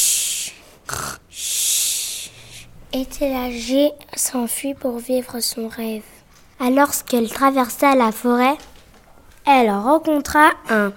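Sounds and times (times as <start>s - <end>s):
brothers snoring loudly in a cabin: 0.9s - 2.7s
speech: 2.9s - 8.7s, 9.5s - 10.9s.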